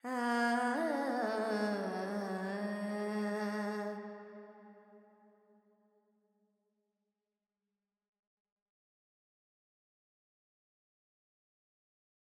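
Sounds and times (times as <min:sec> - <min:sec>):
Carnatic female vocal alaps with Phrygian reverb: 0:00.0 - 0:04.8.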